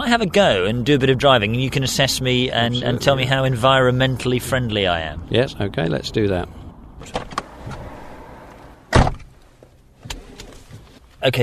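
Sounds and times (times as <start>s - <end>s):
speech: 0.1s - 7.3s, 11.2s - 11.4s
car door slamming shut with a heavy thud: 7.0s - 10.9s
rustling and shuffling: 8.6s - 11.2s
quieter car door thump: 8.9s - 10.8s.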